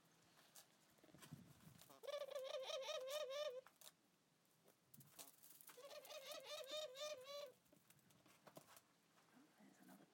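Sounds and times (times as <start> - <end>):
laughing doves cooing: 2.0 - 3.6, 5.8 - 7.6.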